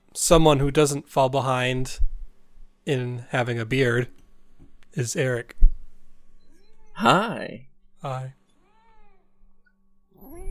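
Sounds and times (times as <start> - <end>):
speech: 0.2 - 2.1, 2.9 - 4.2, 4.9 - 5.6, 7.0 - 8.4
cat meowing with drawn-out wavering cry and rising yowl: 6.5 - 7.2, 8.6 - 9.5, 10.2 - 10.4.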